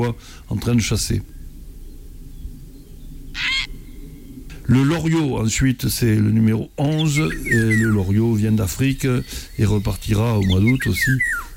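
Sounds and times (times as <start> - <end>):
speech: 0.0 - 1.4, 4.7 - 11.5
faint steady hum: 0.0 - 11.5
grey heron harsh hoarse call: 3.3 - 3.8, 10.4 - 11.5.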